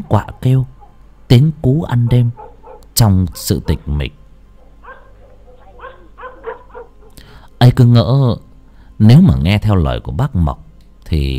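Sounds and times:
speech: 0:00.0 - 0:00.7, 0:01.3 - 0:02.4, 0:03.0 - 0:04.2, 0:07.6 - 0:11.3
dogs barking and yelping at night: 0:00.0 - 0:07.4
low steady hum: 0:00.0 - 0:11.3.

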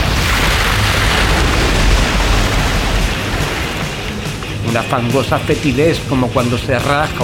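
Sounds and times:
loud bursting blast as a yacht rams a tentacled sea creature: 0:00.0 - 0:04.7
speech: 0:04.7 - 0:07.2.

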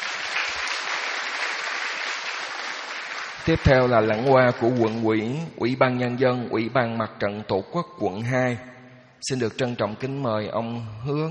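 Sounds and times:
audience applause in a hall at a ceremony: 0:00.0 - 0:05.0
speech: 0:03.4 - 0:11.2.

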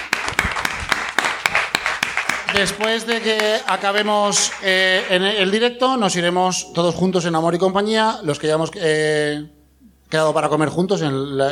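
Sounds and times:
audience applause: 0:00.0 - 0:05.5
speech: 0:02.5 - 0:11.5.

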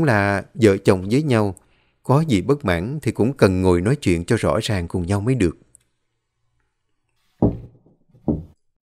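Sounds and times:
speech: 0:00.0 - 0:05.6
light knocks on a house door: 0:07.4 - 0:08.6.

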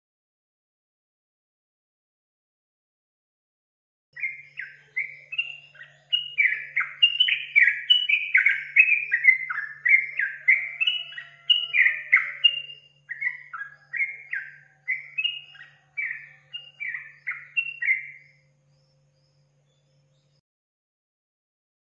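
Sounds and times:
Yellow-vented Bulbul singing: 0:04.2 - 0:20.4
faint low hum: 0:04.2 - 0:20.4.

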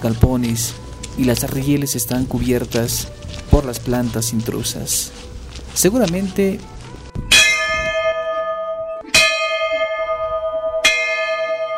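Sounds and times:
speech: 0:00.0 - 0:06.8
old railway station bell at an abandoned station: 0:07.3 - 0:11.7.

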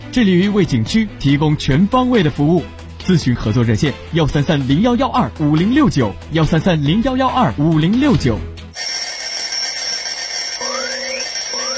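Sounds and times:
speech: 0:00.1 - 0:08.5
electronic alarm clock beeping: 0:08.7 - 0:11.7.

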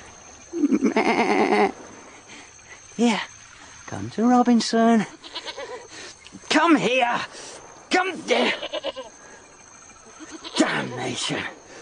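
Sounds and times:
goat bleating: 0:00.7 - 0:01.7, 0:05.2 - 0:05.8, 0:08.3 - 0:09.1, 0:10.2 - 0:10.6
speech: 0:01.0 - 0:01.8, 0:03.0 - 0:03.3, 0:04.0 - 0:05.4, 0:06.6 - 0:09.1, 0:10.8 - 0:11.6.

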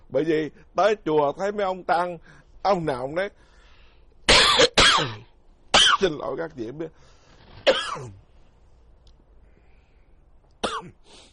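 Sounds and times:
speech: 0:00.1 - 0:03.5, 0:04.6 - 0:05.3, 0:06.0 - 0:07.1, 0:07.7 - 0:08.2
man coughing during a Buddhist lecture: 0:04.3 - 0:06.1, 0:07.6 - 0:08.2, 0:10.6 - 0:11.0.

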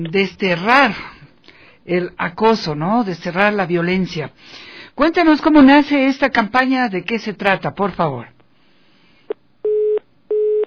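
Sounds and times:
speech: 0:00.1 - 0:01.1, 0:01.9 - 0:08.3
telephone line beeps after a dropped call: 0:09.7 - 0:10.6.

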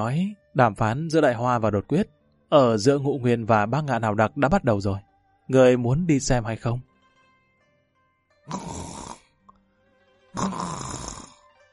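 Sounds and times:
speech: 0:00.0 - 0:06.9, 0:08.5 - 0:08.8, 0:10.4 - 0:10.8
man snoring softly after just falling asleep: 0:08.5 - 0:09.3, 0:10.4 - 0:11.4.

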